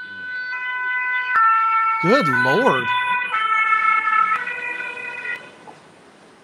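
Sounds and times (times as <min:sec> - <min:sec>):
emergency vehicle siren in stepped electronic tones: 0:00.4 - 0:05.6
man exclaiming: 0:02.0 - 0:03.0
speech: 0:02.0 - 0:03.0.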